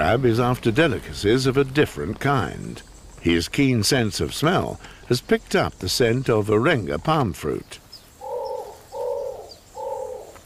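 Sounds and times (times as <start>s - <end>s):
speech: 0.1s - 7.8s
imperial pigeon cooing on an island with palm trees: 8.2s - 10.4s.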